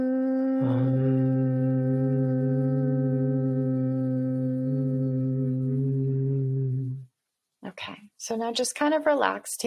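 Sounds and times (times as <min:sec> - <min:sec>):
person humming a low steady hum: 0:00.0 - 0:07.1
speech: 0:07.8 - 0:09.6.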